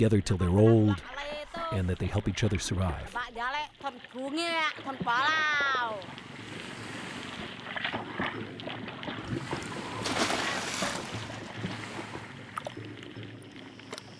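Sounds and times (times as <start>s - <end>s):
speech: 0.0s - 6.6s
steady wind around a boat: 0.0s - 14.1s
water noise around a boat: 0.0s - 14.1s
man jumping into the sea with a splash: 4.6s - 12.8s.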